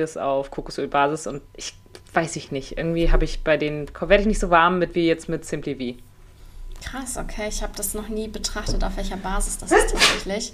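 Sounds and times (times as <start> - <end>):
speech: 0.0 - 6.1, 6.8 - 10.5
sneeze: 10.0 - 10.2.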